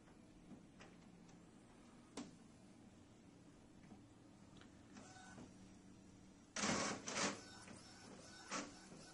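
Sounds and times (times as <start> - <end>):
printer printing a score sheet: 5.0 - 5.6, 6.6 - 9.1.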